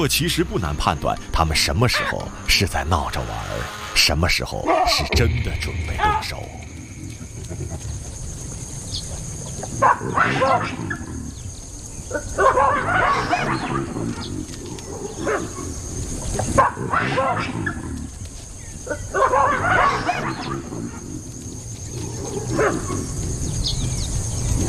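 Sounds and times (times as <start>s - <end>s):
speech: 0.0s - 6.7s, 9.8s - 11.0s, 15.2s - 15.7s, 16.4s - 17.8s, 22.5s - 23.2s
steady outdoor ambience: 0.0s - 24.6s
baboons giving harsh barking provocative calls at African wild dogs: 1.1s - 8.6s, 9.5s - 18.2s, 18.8s - 23.6s.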